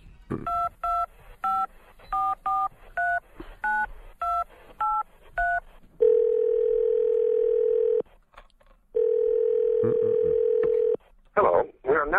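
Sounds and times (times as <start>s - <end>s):
touch-tone dialing beeps placing a phone call: 0.5s - 8.0s, 9.0s - 11.0s
loud steady telephone tone: 6.0s - 8.0s, 9.0s - 11.0s.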